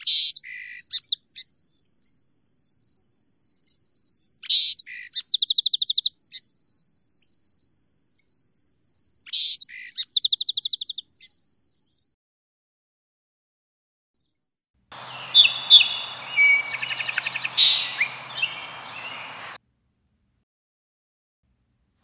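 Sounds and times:
song sparrow singing whistles, buzzes and trills: 3.7s - 6.2s, 8.6s - 11.1s, 15.0s - 19.6s
background hiss: 14.9s - 19.6s.

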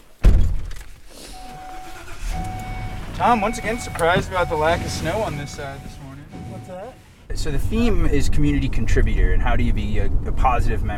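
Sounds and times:
low steady rumble of a car interior during a short ride: 0.2s - 10.9s
car door shutting: 1.4s - 7.1s
speech: 3.2s - 6.0s, 7.4s - 10.9s.

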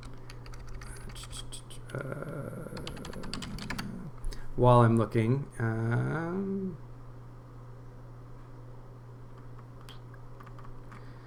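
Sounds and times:
typing on a computer keyboard: 0.0s - 1.3s, 2.7s - 3.9s, 9.4s - 11.0s
steady low electrical hum: 0.0s - 11.2s
speech: 1.2s - 3.2s, 4.6s - 6.9s.

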